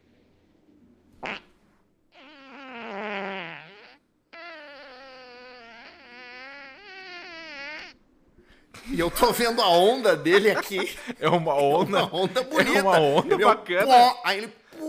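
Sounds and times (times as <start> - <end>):
farts: 1.2 - 1.5, 2.1 - 8.0
laughter: 8.8 - 14.1
speech: 8.9 - 14.6.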